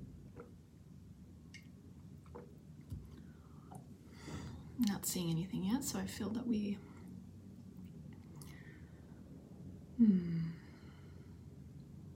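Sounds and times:
person sipping water: 1.5s - 3.9s, 7.7s - 8.8s
speech: 4.9s - 6.9s, 10.0s - 10.3s.

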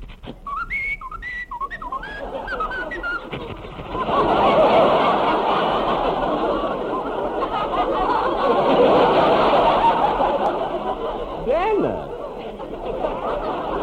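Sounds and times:
short bright whistled tune: 0.4s - 4.3s
audience laughter: 1.6s - 13.8s
audience applause: 4.0s - 11.2s.

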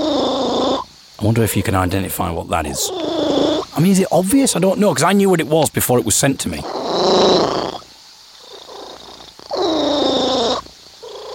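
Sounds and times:
domestic cat purring: 0.0s - 4.0s, 6.6s - 7.8s, 8.4s - 11.3s
speech: 1.2s - 7.6s.

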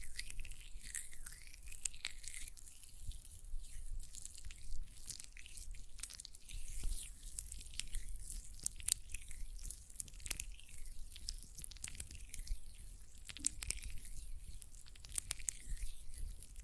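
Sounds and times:
hands squishing gel lotion: 0.0s - 16.6s
sticky clicks and drip-like pops: 6.0s - 16.6s.

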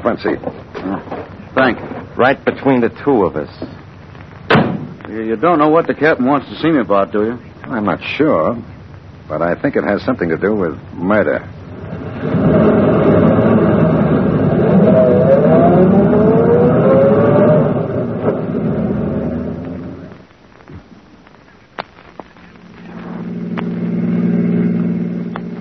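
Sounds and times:
speech: 0.0s - 3.8s, 5.1s - 8.7s, 9.3s - 11.6s, 12.2s - 12.4s
car engine running: 11.6s - 20.2s, 22.5s - 25.6s.

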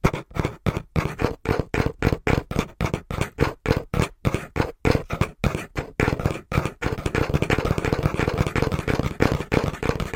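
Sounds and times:
fingers tapping a cardboard box: 0.0s - 10.1s.

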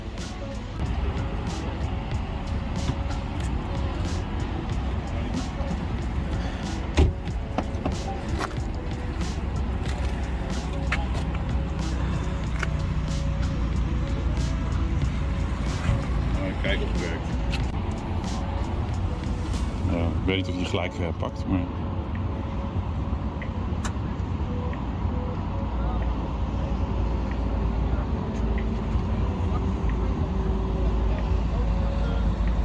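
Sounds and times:
heavy highway traffic roar beside a supercharger station: 0.0s - 32.6s
speech: 20.4s - 21.8s.

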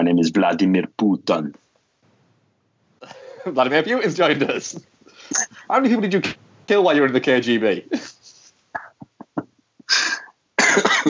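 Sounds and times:
speech: 0.0s - 1.6s, 3.0s - 8.2s
harsh raspy coughing: 8.8s - 11.0s.

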